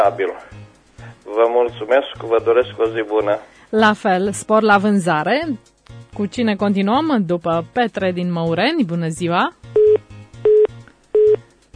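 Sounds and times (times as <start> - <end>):
speech: 0.0 - 10.0
telephone busy tone after caller hung up: 9.8 - 11.4.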